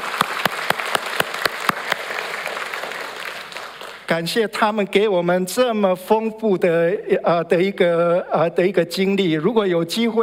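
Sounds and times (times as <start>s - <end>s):
audience applauding at a celebration: 0.0s - 4.1s
speech: 4.1s - 10.2s.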